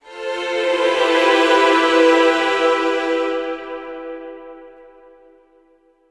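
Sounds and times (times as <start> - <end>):
violin chord ending from a PS Vita: 0.0 - 5.6.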